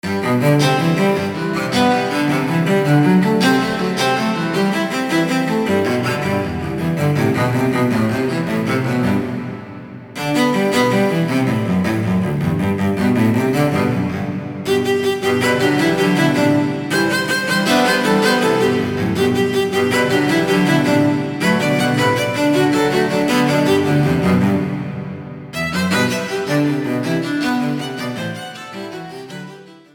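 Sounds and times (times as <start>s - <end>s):
cello duet: 0.0s - 29.9s.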